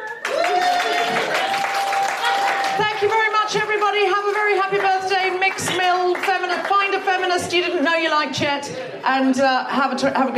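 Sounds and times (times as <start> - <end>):
audience applause: 0.0 - 7.1
speech: 7.4 - 10.3.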